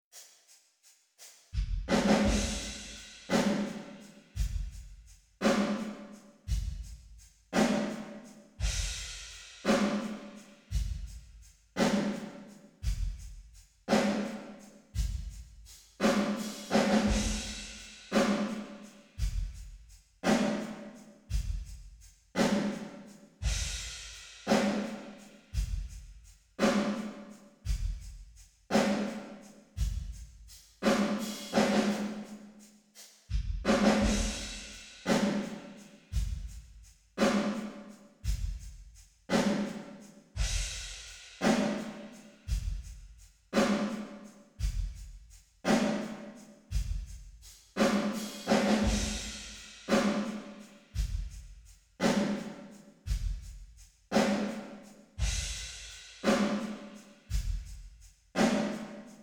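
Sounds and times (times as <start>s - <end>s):
drums: 1.2s - 59.2s.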